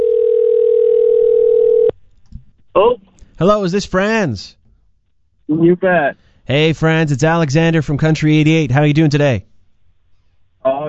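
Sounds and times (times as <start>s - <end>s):
telephone dial tone: 0.0s - 1.9s
speech: 2.9s - 4.6s, 5.5s - 9.5s.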